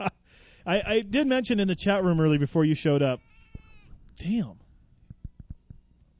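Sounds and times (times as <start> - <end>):
speech: 0.7 - 3.3, 4.2 - 4.6
cat meowing: 3.2 - 4.0.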